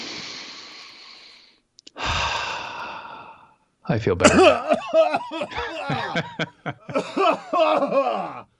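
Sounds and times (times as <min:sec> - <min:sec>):
deep breath taken close to the microphone: 0:00.0 - 0:03.7
speech: 0:03.9 - 0:08.5
laughter: 0:04.3 - 0:08.4.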